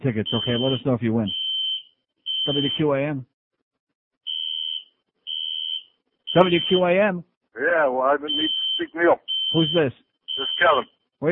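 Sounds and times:
speech: 0.0 - 1.4, 2.4 - 3.3, 6.3 - 11.2
fire alarm shrill high-pitched beeps: 0.3 - 2.8, 4.3 - 6.9, 8.3 - 10.9.

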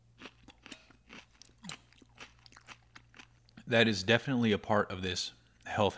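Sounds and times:
low hum: 0.0 - 5.9
crunchy salad being chewed: 0.1 - 3.7
speech: 3.7 - 5.9.

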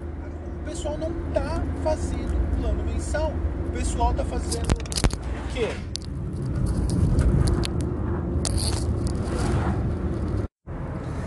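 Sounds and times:
car driving in traffic heard from inside the cabin: 0.0 - 11.2
speech: 0.7 - 5.0, 5.6 - 7.0.

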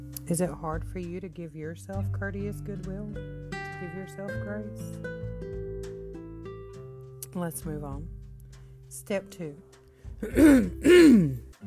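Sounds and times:
speech: 0.3 - 5.2, 7.3 - 8.2, 8.9 - 11.6
throat clearing: 10.2 - 11.5.

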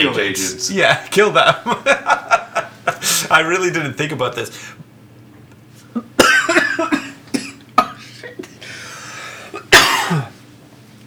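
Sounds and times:
speech: 0.0 - 2.4, 3.0 - 4.9
laughter: 0.0 - 3.5
low hum: 0.0 - 11.0
person coughing: 6.0 - 8.6, 9.5 - 10.4.

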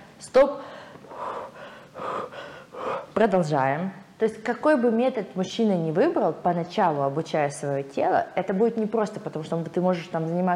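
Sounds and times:
speech: 0.2 - 1.6, 3.2 - 10.5
person demonstrating deep steady breathing: 0.6 - 3.2.

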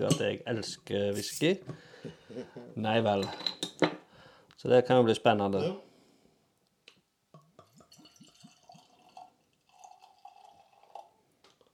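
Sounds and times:
speech: 0.0 - 3.6, 4.6 - 5.9
barley wine aged in whisky barrels poured from a bottle into a glass: 7.6 - 11.7.

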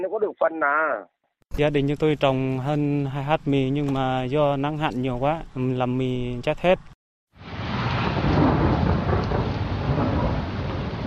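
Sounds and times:
speech: 0.0 - 6.9
heavy rain in Gia Lai and Đắk Lắk provinces in Vietnam: 7.4 - 11.0.

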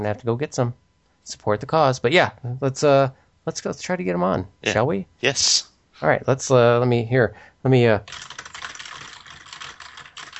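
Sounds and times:
speech: 0.0 - 8.3
fingers typing on a computer keyboard: 8.1 - 10.3.

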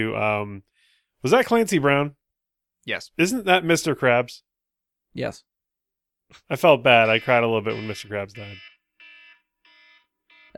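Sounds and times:
speech: 0.0 - 2.2, 2.8 - 4.5, 5.2 - 5.5, 6.3 - 8.7
electronic alarm beeping: 6.9 - 10.5.

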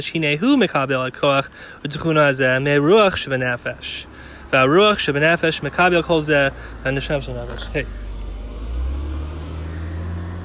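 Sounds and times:
speech: 0.0 - 8.0
car driving by outside: 5.7 - 10.4.

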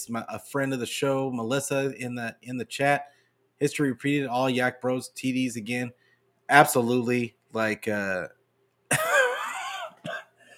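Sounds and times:
speech: 0.0 - 8.4
raspy throat clearing: 8.9 - 10.3
person giving sharp coughs: 8.9 - 10.5.

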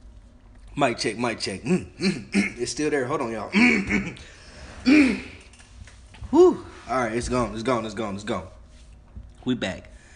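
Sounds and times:
speech: 0.8 - 5.3, 6.9 - 8.6, 9.4 - 9.9
throat clearing: 1.7 - 2.7, 3.6 - 5.4.

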